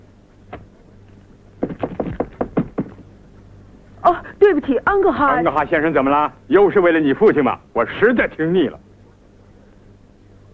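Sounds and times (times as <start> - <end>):
knocking on a door before entering in a staged opera scene: 1.6 - 3.1
speech: 4.1 - 8.8.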